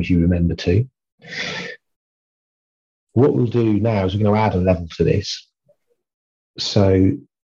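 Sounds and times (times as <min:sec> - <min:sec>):
speech: 0:00.0 - 0:01.8, 0:03.2 - 0:05.5, 0:06.6 - 0:07.3
deep breath during heart-focused breathing exercise: 0:01.2 - 0:01.8.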